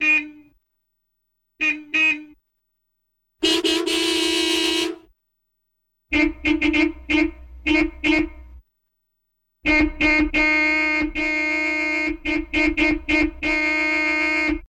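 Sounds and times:
various car horns: 0.0s - 0.6s, 1.6s - 2.4s, 3.4s - 5.1s, 6.1s - 8.6s, 9.6s - 14.6s.

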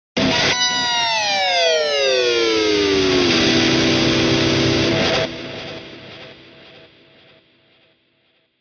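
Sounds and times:
electric guitar scream: 0.2s - 6.0s.

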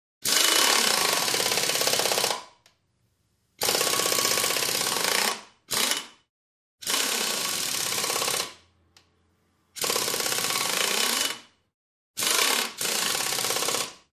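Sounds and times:
air tool wrench whirring: 0.2s - 2.4s, 3.6s - 6.2s, 6.8s - 8.6s, 9.8s - 11.6s, 12.2s - 14.0s.

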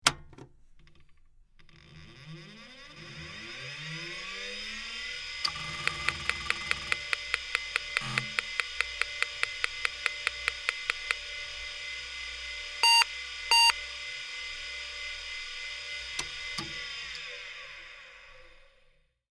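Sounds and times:
PC hard drive whir during aborted startup: 1.6s - 19.1s.

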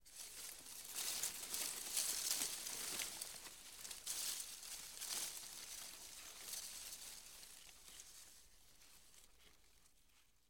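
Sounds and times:
leaves rustling heavily: 0.1s - 7.3s.

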